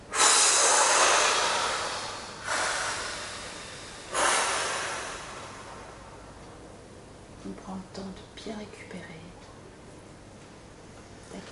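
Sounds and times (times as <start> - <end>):
short breaths: 0.0 - 6.2
long slow airy exhalation during a breathing exercise: 0.0 - 6.3
speech: 7.7 - 9.5.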